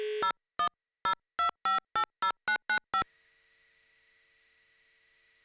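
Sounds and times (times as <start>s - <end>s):
telephone line signalling tones from POTS to NMT ship PBX: 0.2s - 3.1s.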